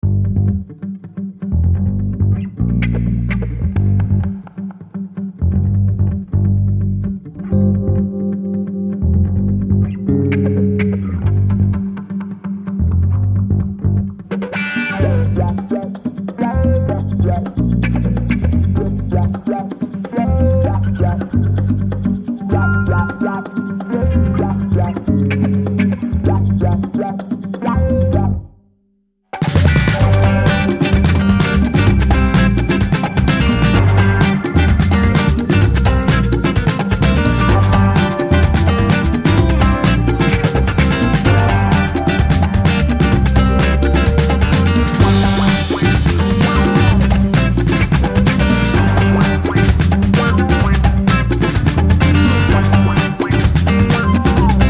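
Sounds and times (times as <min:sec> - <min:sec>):
bass groove: 0:00.0 - 0:00.8, 0:01.4 - 0:14.3, 0:15.0 - 0:28.5, 0:29.4 - 0:54.6.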